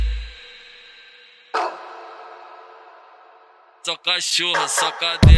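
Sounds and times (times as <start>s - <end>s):
dog barking: 1.5s - 2.9s, 4.5s - 5.2s.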